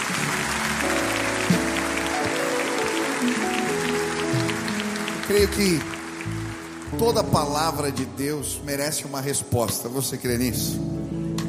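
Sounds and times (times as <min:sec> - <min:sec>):
church audience applauding after a sermon: 0:00.0 - 0:08.4
speech: 0:05.3 - 0:06.0, 0:07.0 - 0:11.0.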